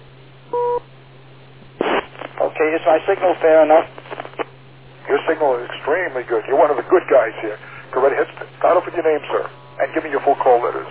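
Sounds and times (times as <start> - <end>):
faint static: 0.0 - 10.8
low hum: 0.0 - 10.8
two-tone beep on an amateur radio net: 0.5 - 0.8
speech: 2.6 - 4.0, 5.1 - 10.8.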